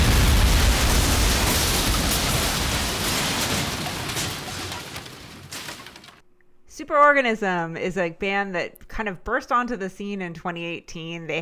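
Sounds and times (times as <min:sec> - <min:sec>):
explosion sound effect with deep roaring rumble and hissing: 0:00.0 - 0:06.2
speech: 0:06.9 - 0:11.4.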